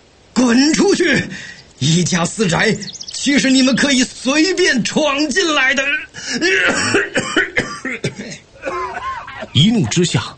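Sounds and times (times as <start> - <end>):
speech: 0.5 - 7.4, 9.6 - 10.3
person in a violent coughing fit: 6.2 - 9.6.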